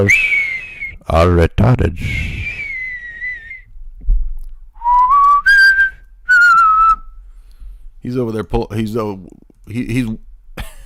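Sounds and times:
speech: 0.0s - 0.4s, 1.1s - 2.4s, 8.0s - 10.7s
whistling nose imitated by a person: 0.0s - 1.1s, 2.0s - 3.7s, 4.8s - 7.3s.

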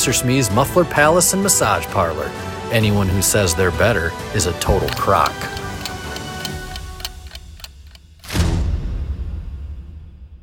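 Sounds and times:
speech: 0.0s - 5.6s
clock ticking: 4.9s - 8.3s.

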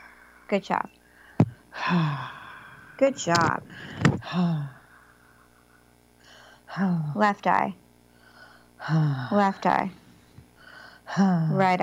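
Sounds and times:
speech: 0.5s - 1.0s, 1.8s - 2.4s, 3.0s - 4.8s, 6.7s - 7.8s, 8.8s - 10.0s, 11.1s - 11.8s
deep breathing during guided exercise: 1.1s - 6.7s, 8.1s - 9.3s, 10.6s - 11.1s.

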